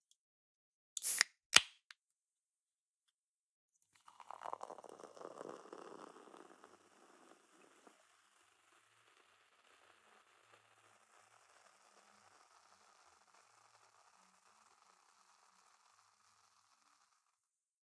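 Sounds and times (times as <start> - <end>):
soda pouring in kitchen: 1.0 - 1.3, 4.0 - 8.3
soda can opening in kitchen: 1.0 - 1.9.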